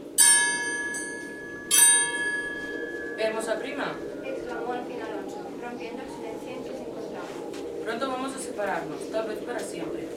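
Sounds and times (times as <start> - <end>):
distant church bell tolling: 0.2 - 4.9
speech: 3.2 - 10.1.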